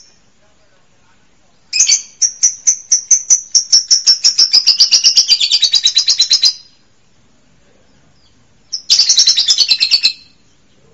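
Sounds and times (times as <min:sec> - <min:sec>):
songbird rattling trills of high bright notes: 0:01.7 - 0:06.8, 0:07.9 - 0:10.8.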